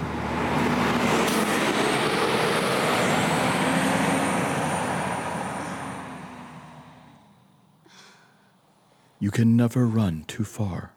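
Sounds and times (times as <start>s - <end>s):
bus engine rumbling as the bus pulls away: 0.0s - 10.8s
speech: 9.2s - 10.9s.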